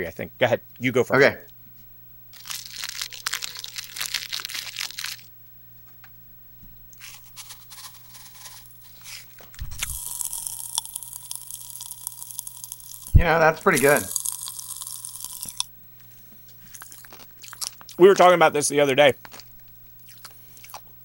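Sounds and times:
speech: 0.0 - 1.5, 13.2 - 14.2, 18.0 - 19.3
pop rocks candy crackling and popping in a mouth: 2.4 - 5.3, 7.0 - 15.7, 16.5 - 21.0.

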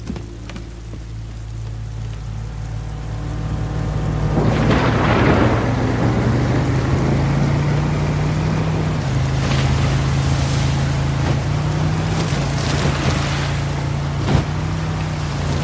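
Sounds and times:
motorboat engine droning on a raging sea: 0.0 - 15.6
rushing churning sea water: 0.0 - 15.6
gusts of wind at sea: 3.2 - 15.6
waves crashing on a raging sea: 4.1 - 15.6.

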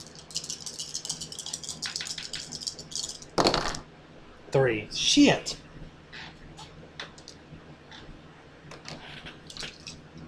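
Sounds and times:
four dice rolling, rattling and clattering: 0.0 - 3.8
speech: 4.5 - 5.6.

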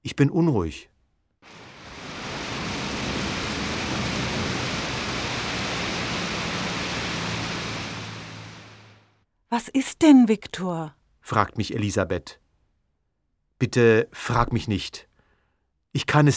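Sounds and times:
speech: 0.0 - 0.9, 9.5 - 12.4, 13.6 - 15.1, 15.9 - 16.3
rain: 1.4 - 9.2
wind: 1.4 - 9.2
faint low rumble: 1.5 - 9.2.

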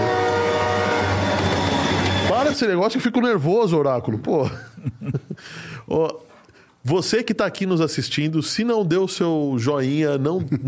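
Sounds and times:
metro train approaching: 0.0 - 2.9
speech: 2.6 - 10.6
laughter: 4.4 - 5.5.

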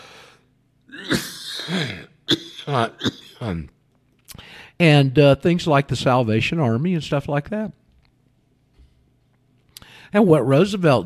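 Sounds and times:
person clearing throat: 0.9 - 3.7
person coughing: 0.9 - 3.7
speech: 2.7 - 7.8, 10.1 - 11.0.

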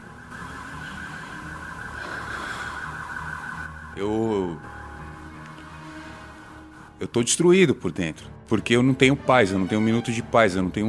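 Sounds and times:
ambulance siren wailing: 0.0 - 7.0
low rumble of street noise: 0.0 - 7.1
speech: 4.0 - 4.8, 7.0 - 10.8.

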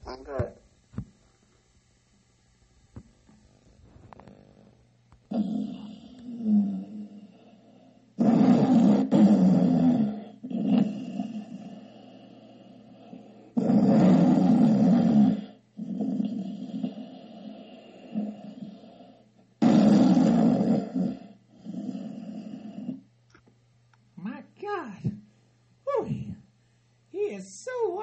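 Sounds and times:
loud rasping snoring: 4.2 - 23.1.

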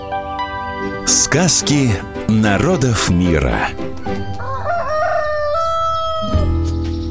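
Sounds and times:
speech: 0.8 - 4.5
Gallic rooster crowing on a roost: 4.0 - 6.5.

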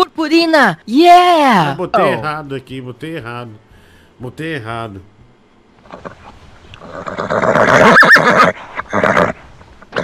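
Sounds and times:
speech: 0.2 - 5.1, 5.9 - 9.2
horse snorting: 5.8 - 10.0
horse neighing: 6.8 - 10.0.

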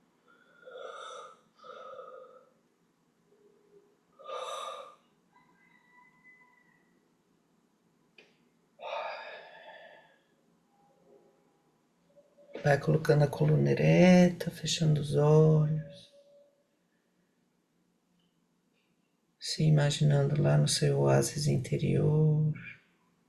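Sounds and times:
deep breathing: 0.2 - 2.6, 4.2 - 5.1, 8.8 - 10.4
speech: 12.6 - 16.1, 19.6 - 22.7.

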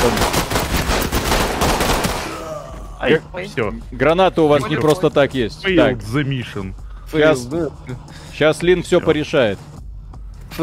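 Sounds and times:
speech: 0.0 - 0.3, 3.0 - 9.7
video game automatic gunfire: 0.0 - 2.5.

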